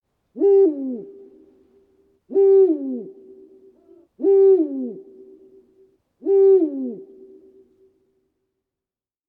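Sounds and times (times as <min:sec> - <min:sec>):
Eurasian eagle-owl hooting at night: 0:00.4 - 0:01.5, 0:02.3 - 0:07.7.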